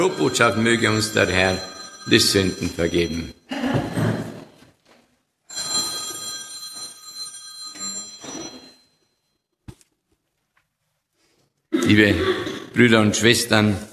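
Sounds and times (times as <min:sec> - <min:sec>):
telephone ringing during a church service: 0:00.0 - 0:03.5, 0:05.5 - 0:09.4
speech: 0:00.0 - 0:03.9, 0:11.9 - 0:13.9.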